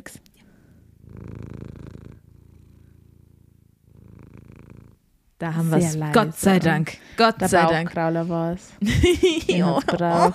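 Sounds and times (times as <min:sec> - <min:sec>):
cat purring while its belly is rubbed: 0:00.1 - 0:05.4
speech: 0:05.4 - 0:10.3.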